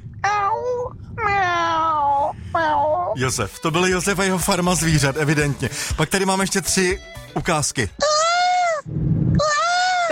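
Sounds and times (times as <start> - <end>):
person imitating drawn-out whiny cat meows: 0.2 - 3.2, 8.0 - 8.8, 9.4 - 10.0
speech: 3.2 - 8.1.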